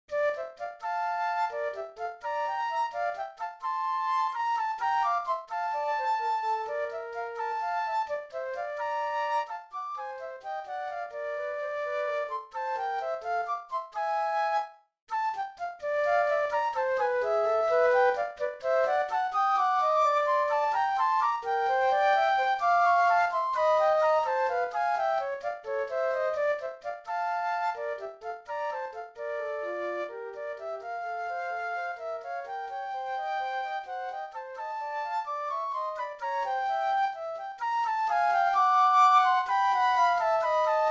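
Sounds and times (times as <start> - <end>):
two flutes playing a bagatelle: 0.1 - 40.8.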